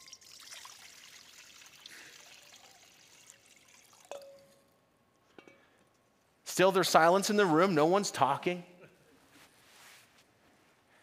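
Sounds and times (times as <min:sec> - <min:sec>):
water pouring and trickling into a basin: 0:00.0 - 0:04.6
speech: 0:06.6 - 0:08.7.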